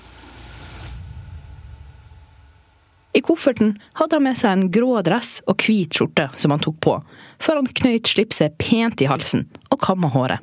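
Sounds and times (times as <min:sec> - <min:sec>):
shower water running: 0:00.0 - 0:01.0
speech: 0:03.2 - 0:10.4.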